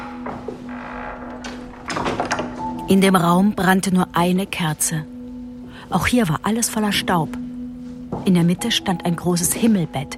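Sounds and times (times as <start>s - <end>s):
door opening with a soft rattle: 0.0s - 2.9s
speech: 2.9s - 5.1s, 5.8s - 7.5s, 8.2s - 10.1s.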